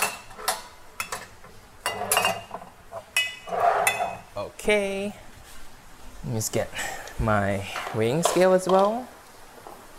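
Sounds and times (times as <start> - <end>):
glass and kitchenware clinking while preparing an egg marinade: 0.0 - 4.3
speech: 4.6 - 5.2, 6.2 - 9.1.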